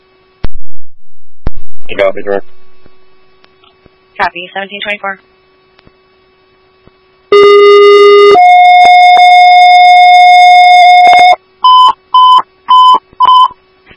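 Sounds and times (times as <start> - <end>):
speech: 1.9 - 2.6, 4.2 - 5.3
dispatch paging tones for an ambulance: 7.3 - 13.6.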